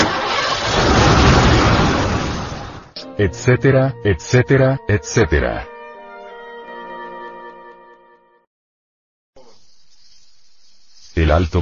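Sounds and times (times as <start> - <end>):
car engine starting: 0.0 - 2.9
speech: 3.2 - 5.7, 11.2 - 11.6.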